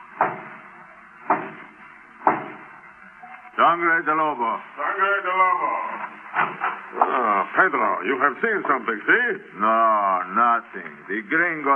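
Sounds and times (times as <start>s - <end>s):
guard knocking on the door of a guarded hacienda: 2.2s - 2.6s
speech: 3.6s - 6.2s, 6.9s - 11.7s.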